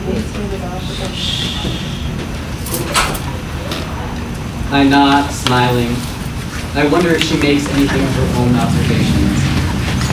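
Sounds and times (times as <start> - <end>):
indistinct voices murmuring: 0.0 - 10.1
steady low rumble: 0.0 - 10.1
sliding door bumping shut with rattling clatter: 2.7 - 3.9
speech: 4.7 - 6.1, 6.8 - 9.5.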